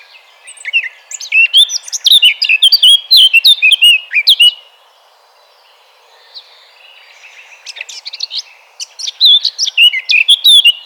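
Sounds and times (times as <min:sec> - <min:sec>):
Eurasian blackcap Sylvia atricapilla singing: 0:00.0 - 0:04.6, 0:07.6 - 0:10.8.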